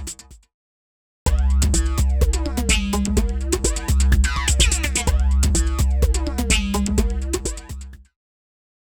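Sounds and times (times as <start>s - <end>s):
electronic music: 1.3s - 8.0s.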